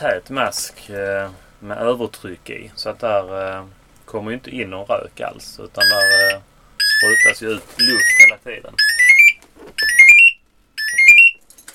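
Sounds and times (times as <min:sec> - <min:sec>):
speech: 0:00.0 - 0:09.0, 0:09.6 - 0:10.0
smoke diver's breathing-apparatus inactivity alarm chirping: 0:05.8 - 0:11.7.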